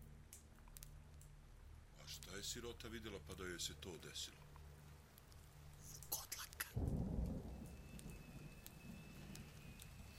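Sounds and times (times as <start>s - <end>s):
rain falling: 2.0s - 10.1s
speech: 2.1s - 4.5s.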